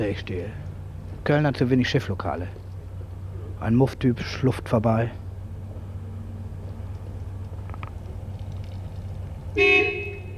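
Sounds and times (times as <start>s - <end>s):
speech: 0.0s - 2.6s, 3.6s - 5.2s
low hum: 0.0s - 10.3s
car horn toot on a street in Cologne: 9.6s - 10.3s.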